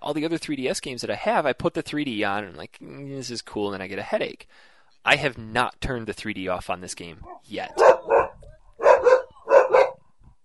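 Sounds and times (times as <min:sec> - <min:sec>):
speech: 0:00.0 - 0:08.0
dogs barking: 0:07.2 - 0:10.0.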